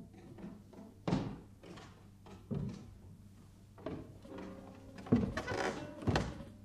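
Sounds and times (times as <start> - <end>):
heavy footsteps climbing a wooden staircase: 1.0 - 3.0, 3.8 - 6.5.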